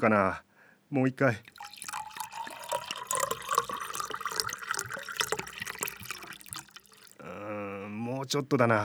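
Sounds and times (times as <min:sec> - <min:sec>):
speech: 0:00.0 - 0:01.8, 0:08.2 - 0:08.8
Fukushima sake poured from a 720 ml bottle: 0:01.4 - 0:07.6.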